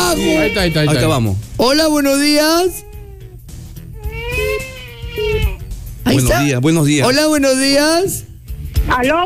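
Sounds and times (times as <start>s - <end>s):
baby crying in a long drawn-out wail: 0.0s - 1.2s, 2.1s - 6.2s
speech: 0.1s - 2.9s, 6.1s - 9.2s.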